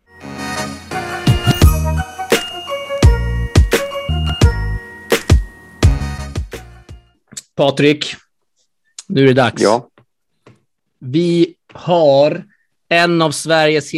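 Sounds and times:
jingly phone ringtone melody with percussive beats: 0:00.1 - 0:07.1
speech: 0:07.6 - 0:08.2, 0:09.1 - 0:09.9, 0:11.0 - 0:13.9.

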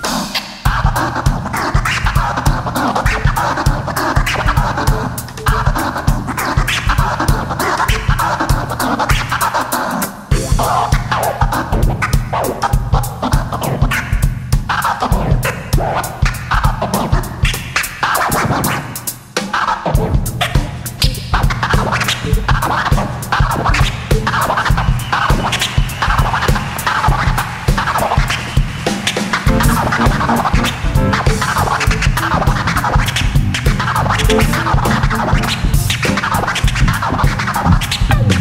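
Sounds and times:
rapid DJ turntable scratching: 0:00.0 - 0:38.4
steady jazz band groove: 0:00.0 - 0:38.4.

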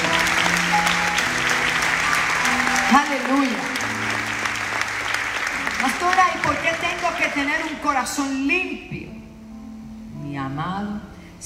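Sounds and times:
crowd applauding in a reverberant room: 0:00.0 - 0:08.2
cheers and whoops: 0:01.7 - 0:03.1
speech: 0:06.0 - 0:09.2, 0:10.4 - 0:11.4.

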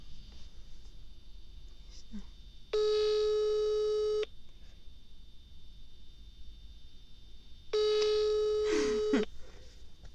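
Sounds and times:
speech: 0:02.0 - 0:02.4
quiet phone line hiss: 0:02.7 - 0:04.3, 0:05.5 - 0:09.3
electronic phone ringback tones: 0:02.8 - 0:04.3, 0:07.7 - 0:09.3.

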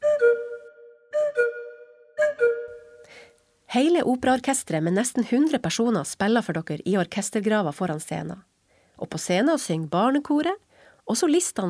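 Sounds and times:
orchestral cuckoo whistle two-note falling call: 0:00.0 - 0:03.2
speech: 0:03.7 - 0:11.6.

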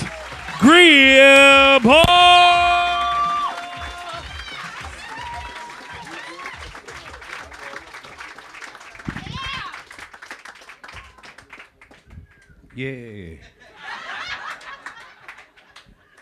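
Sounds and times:
comedy-show audience clapping and cheering: 0:00.0 - 0:12.1
speech: 0:00.6 - 0:02.3, 0:12.8 - 0:13.6
person shouting over the crowd: 0:00.6 - 0:04.0
laughter: 0:13.2 - 0:16.2.

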